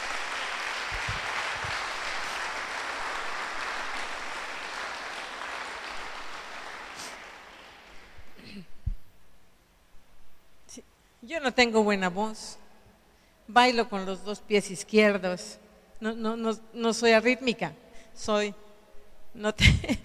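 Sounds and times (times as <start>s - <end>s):
crowd applauding: 0.0s - 8.4s
speech: 10.8s - 12.6s, 13.5s - 18.6s, 19.4s - 20.0s.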